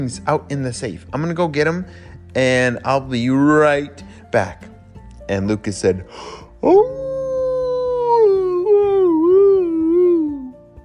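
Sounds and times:
speech: 0:00.0 - 0:04.7, 0:05.3 - 0:07.0
long wavering howl-like yawn: 0:06.6 - 0:10.6
person imitating a sleepy dog trying to bark: 0:06.6 - 0:10.6.

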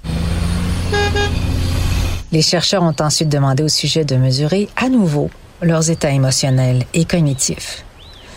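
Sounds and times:
steady low rumble of road traffic: 0:00.0 - 0:08.3
car horn honks: 0:00.8 - 0:01.6
speech: 0:02.3 - 0:07.9.

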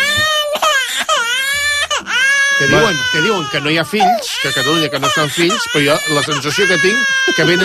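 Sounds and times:
infant crying at home in the early morning: 0:00.0 - 0:07.6
speech: 0:02.6 - 0:07.6.

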